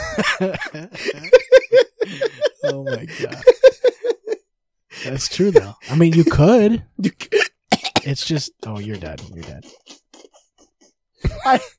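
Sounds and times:
laughter: 0:00.0 - 0:04.4, 0:05.0 - 0:11.7
speech: 0:00.2 - 0:03.7, 0:05.1 - 0:07.3, 0:08.1 - 0:09.9, 0:11.2 - 0:11.7
cough tangled with a hiccup: 0:07.5 - 0:08.2.

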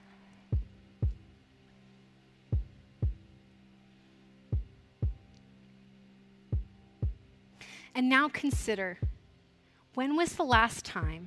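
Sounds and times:
low sustained hum: 0:00.0 - 0:11.2
slow deep heartbeat: 0:00.5 - 0:01.3, 0:02.6 - 0:03.3, 0:04.5 - 0:05.3, 0:06.6 - 0:07.3, 0:08.6 - 0:09.3
speech: 0:08.0 - 0:09.1, 0:10.0 - 0:11.2.

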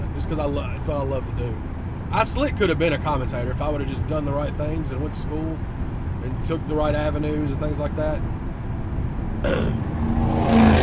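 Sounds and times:
speech: 0:00.2 - 0:08.4, 0:09.4 - 0:09.9
Ford Mustang with fart muffler exhaust revving: 0:09.3 - 0:10.8.

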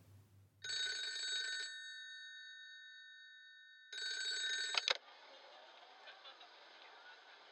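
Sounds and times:
home telephone with call-tracing equipment ringing for an incoming call: 0:00.6 - 0:05.0.

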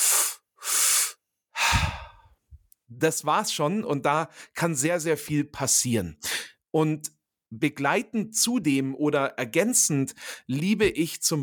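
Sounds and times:
person breathing in and out through the mouth: 0:00.0 - 0:02.4, 0:10.2 - 0:10.5
speech: 0:02.9 - 0:11.4.

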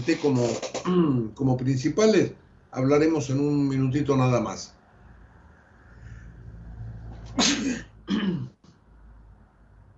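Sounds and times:
speech: 0:00.0 - 0:04.8
person sneezing: 0:07.3 - 0:08.5.

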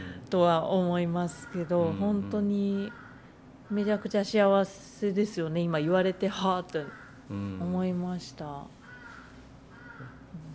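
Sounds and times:
steady low hum: 0:00.0 - 0:10.5
speech: 0:00.3 - 0:03.0, 0:03.7 - 0:08.8
crow cawing: 0:01.3 - 0:04.1, 0:06.8 - 0:07.2, 0:08.8 - 0:10.3.

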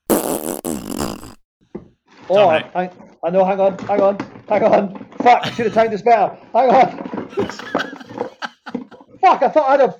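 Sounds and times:
loud buzzy fart sound effect: 0:00.0 - 0:01.4
speech: 0:02.3 - 0:07.8, 0:09.3 - 0:09.9
laughter: 0:05.3 - 0:06.0, 0:07.3 - 0:09.1.

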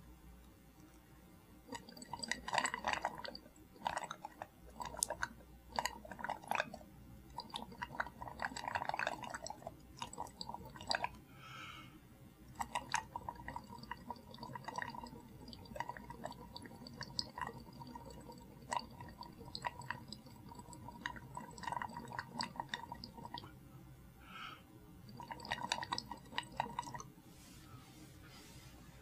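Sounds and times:
breath blown bubbling through lime water: 0:01.7 - 0:11.2, 0:12.5 - 0:23.5, 0:25.0 - 0:27.1.

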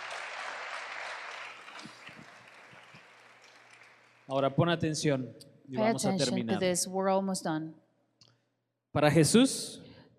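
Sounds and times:
individual claps: 0:00.0 - 0:04.3
crowd applauding: 0:00.0 - 0:04.7
speech: 0:04.3 - 0:07.8, 0:09.0 - 0:09.8.

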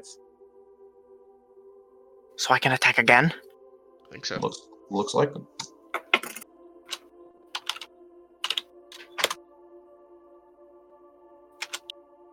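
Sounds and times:
speech: 0:00.0 - 0:00.3, 0:02.4 - 0:03.5, 0:04.1 - 0:05.5
typing on a computer keyboard: 0:06.0 - 0:06.4, 0:07.6 - 0:09.4, 0:11.6 - 0:11.9.

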